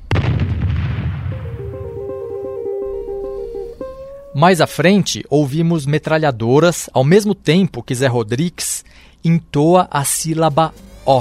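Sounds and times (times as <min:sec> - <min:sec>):
loud explosion with low rumble: 0:00.0 - 0:02.0
steady melodic tone of a song: 0:01.3 - 0:05.5
speech: 0:04.4 - 0:11.1.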